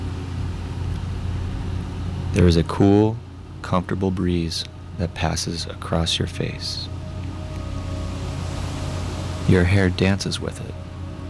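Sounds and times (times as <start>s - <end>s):
faint low hum: 0.0s - 11.2s
ocean waves washing onto sand: 0.0s - 11.2s
speech: 2.3s - 7.0s, 9.5s - 10.8s.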